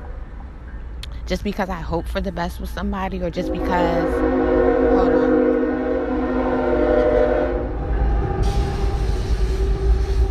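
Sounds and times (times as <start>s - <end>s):
freight train cars rolling past: 0.0s - 10.2s
speech: 1.3s - 5.4s
freight train horn blast: 3.4s - 10.2s.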